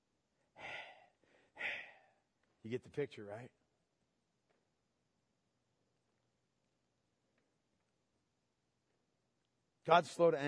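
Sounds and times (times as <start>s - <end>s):
person huffing hot angry breaths through the nose: 0.6s - 2.2s
speech: 2.6s - 3.6s, 9.8s - 10.4s.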